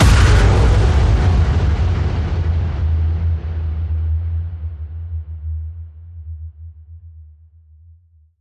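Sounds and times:
electric force slam: 0:00.0 - 0:03.5.

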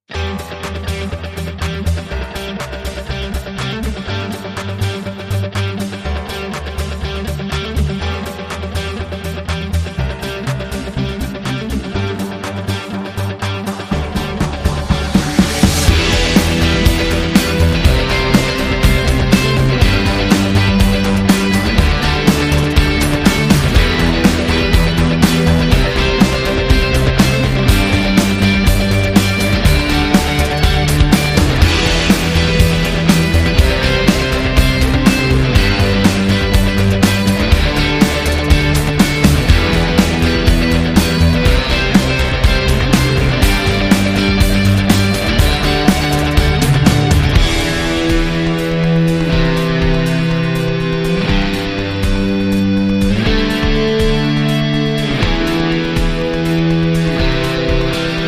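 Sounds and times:
synth arpeggiator: 0:00.1 - 0:58.2.

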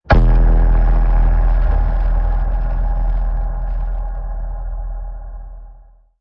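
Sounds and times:
bass slam: 0:00.0 - 0:06.1.

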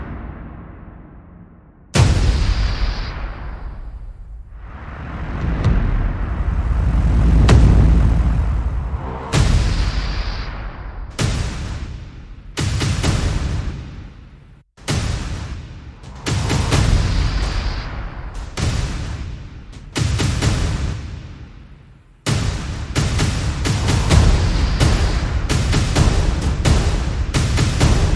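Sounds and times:
percussion: 0:01.9 - 0:28.1
sound effects: 0:04.7 - 0:11.1.

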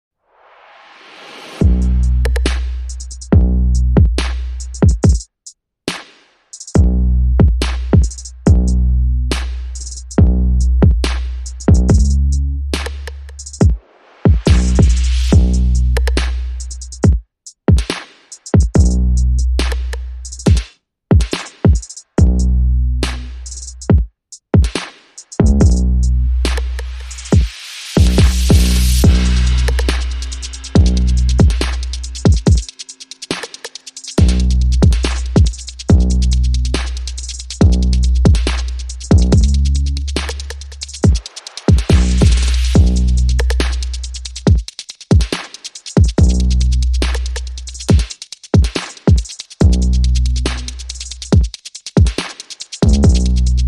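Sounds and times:
drums: 0:01.4 - 0:05.3, 0:05.9 - 0:08.7, 0:09.3 - 0:12.2, 0:12.8 - 0:22.4, 0:23.0 - 0:25.8, 0:26.5 - 0:53.6
bass: 0:01.6 - 0:05.0, 0:06.8 - 0:13.6, 0:14.5 - 0:17.1, 0:18.8 - 0:20.5, 0:22.2 - 0:23.9, 0:25.4 - 0:27.4, 0:28.0 - 0:32.7, 0:34.2 - 0:41.1, 0:41.8 - 0:44.5, 0:46.2 - 0:47.9, 0:49.6 - 0:51.4, 0:52.8 - 0:53.6.

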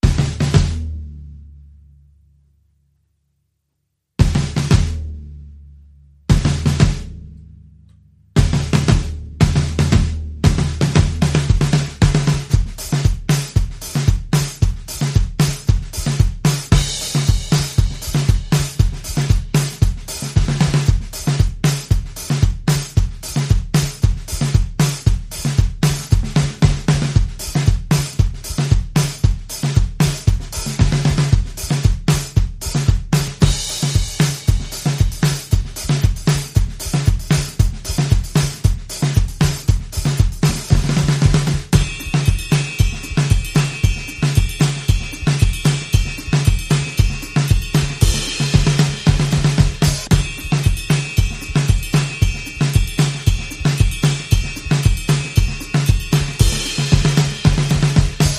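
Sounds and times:
drum kit playing: 0:00.0 - 0:01.5, 0:04.2 - 0:58.3.

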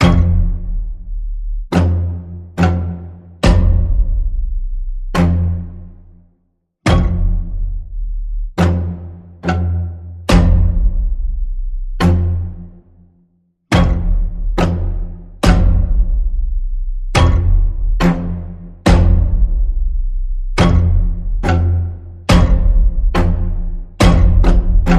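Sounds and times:
string pulse in the key of F: 0:00.0 - 0:06.3, 0:06.9 - 0:24.9.

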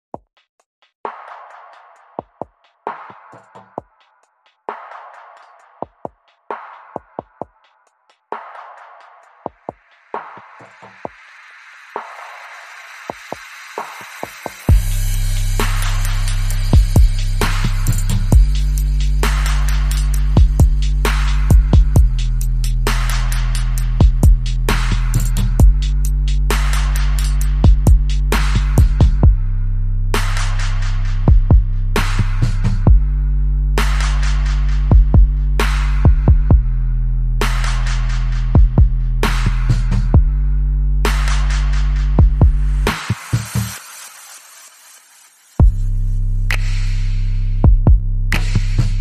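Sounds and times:
chill break drums: 0:00.0 - 0:29.4, 0:30.1 - 0:36.8, 0:37.4 - 0:40.4, 0:41.0 - 0:48.9
bass: 0:14.6 - 0:43.8, 0:45.6 - 0:48.9.

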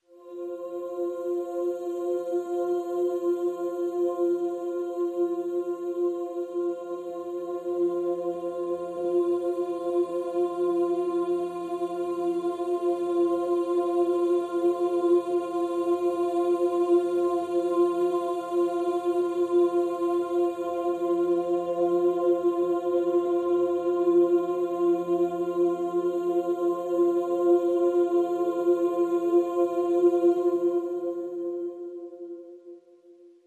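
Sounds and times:
vocal synth pad in F: 0:00.0 - 0:33.2.

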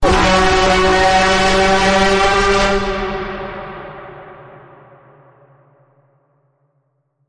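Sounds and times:
full bend note in F sharp: 0:00.0 - 0:04.8.

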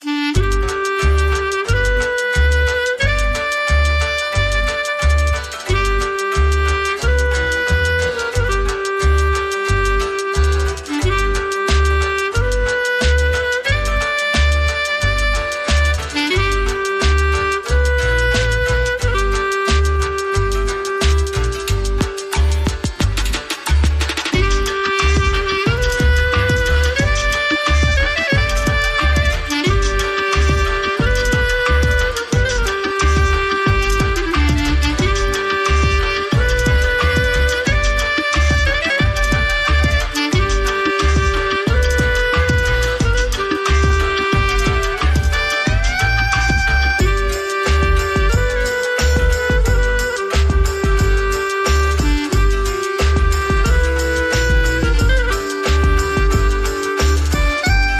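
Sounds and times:
klezmer drum and bass music: 0:00.0 - 0:57.9.

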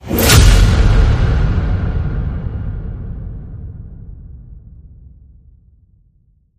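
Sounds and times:
big impact hit: 0:00.0 - 0:05.3.

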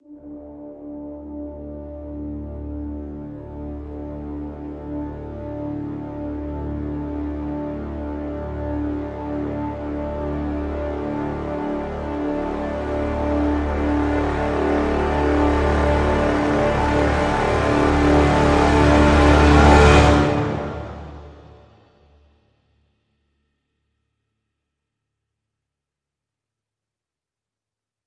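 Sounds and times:
full brass crescendo swell in D: 0:00.0 - 0:21.9.

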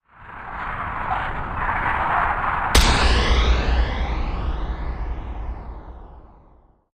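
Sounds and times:
rumble: 0:00.0 - 0:06.8
big impact sweep: 0:02.8 - 0:06.8.

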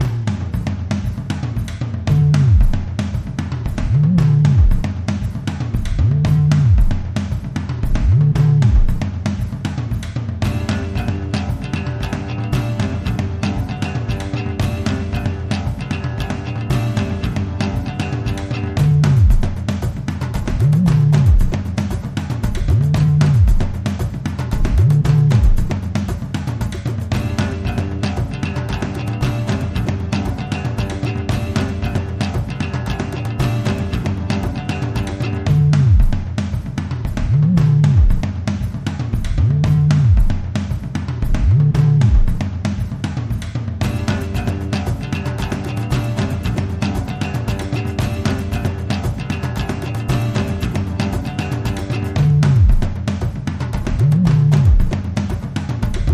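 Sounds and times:
drums: 0:00.0 - 0:56.1
guitar: 0:00.0 - 0:56.1.

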